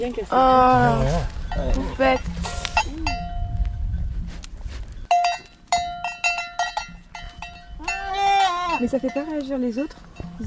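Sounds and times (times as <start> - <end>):
speech: 0.0 - 2.4, 8.8 - 10.4
bells on goats clanking in a farm pen: 1.4 - 3.5, 5.1 - 10.4
goats bleating faintly: 7.8 - 8.8.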